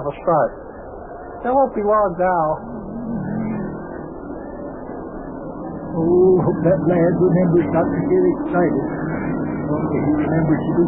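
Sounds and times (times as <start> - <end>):
speech: 0.0 - 0.7, 1.4 - 2.8, 6.0 - 10.8
race car engines droning as cars drive around a track: 2.3 - 10.8.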